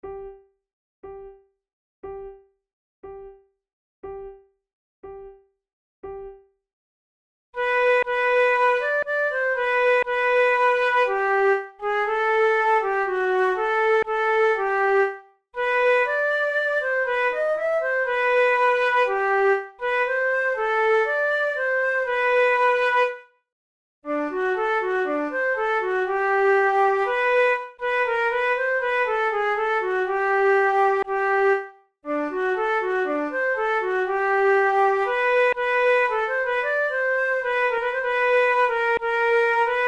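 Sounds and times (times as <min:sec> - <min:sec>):
flute duet: 0:07.6 - 0:23.2, 0:24.1 - 0:39.8.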